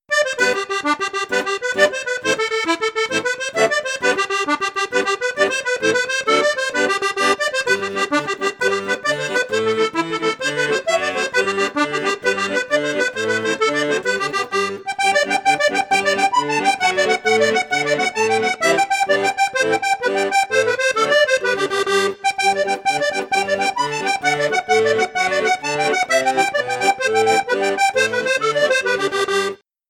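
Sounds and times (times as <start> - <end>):
accordion with bass, middle and high flute registers: 0.0 - 29.8.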